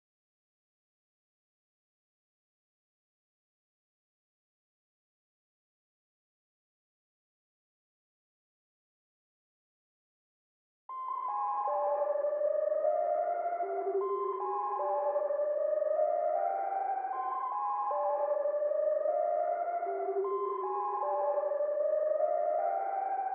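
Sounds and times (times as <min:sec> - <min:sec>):
77 BPM C minor lead melody: 0:11.2 - 0:23.3.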